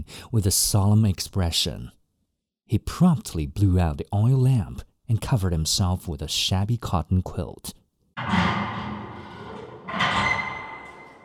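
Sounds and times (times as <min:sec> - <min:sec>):
speech: 0:00.1 - 0:02.0, 0:02.7 - 0:08.5
heavy cellar door scraping open: 0:08.2 - 0:11.2.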